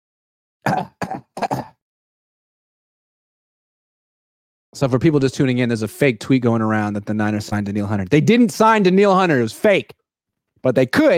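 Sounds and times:
person clearing throat: 0:00.6 - 0:01.8
speech: 0:04.8 - 0:10.0, 0:10.6 - 0:11.1.

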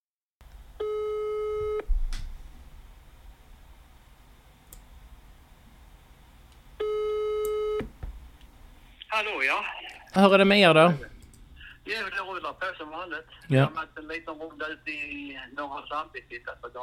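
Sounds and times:
telephone ringback tone of an outgoing phone call: 0:00.8 - 0:01.8, 0:06.8 - 0:07.8
speech: 0:09.2 - 0:11.1, 0:11.9 - 0:16.8.

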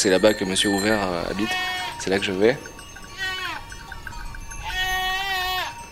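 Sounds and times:
speech: 0:00.0 - 0:02.8
faint rhythmic tinkling: 0:00.0 - 0:05.8
goats bleating: 0:01.2 - 0:02.2, 0:03.1 - 0:03.7, 0:04.6 - 0:05.8.

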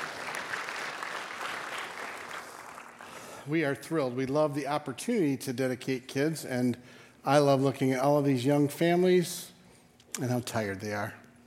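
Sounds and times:
church audience applauding: 0:00.0 - 0:03.4
speech: 0:03.4 - 0:09.5, 0:10.2 - 0:11.2.

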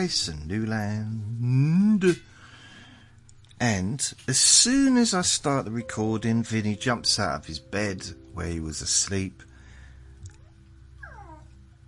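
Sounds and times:
speech: 0:00.0 - 0:02.3, 0:03.6 - 0:09.5
steady low hum: 0:00.0 - 0:11.8
dog making a cat-like whine: 0:10.3 - 0:11.8.

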